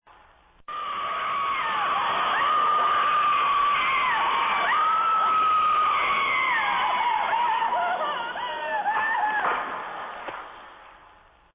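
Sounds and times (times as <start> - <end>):
bloodcurdling scream: 0.7 - 9.8.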